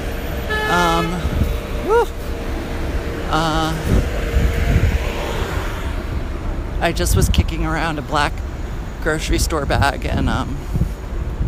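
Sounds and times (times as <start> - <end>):
busy city traffic engine rumble: 0.0 - 11.4
long car horn honks: 0.4 - 1.5
short rising horn toot: 0.4 - 2.3
speech: 3.3 - 3.9, 6.8 - 8.4, 9.0 - 10.8.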